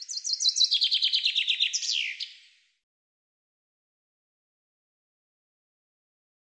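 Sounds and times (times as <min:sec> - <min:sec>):
common chaffinch song: 0:00.0 - 0:02.7.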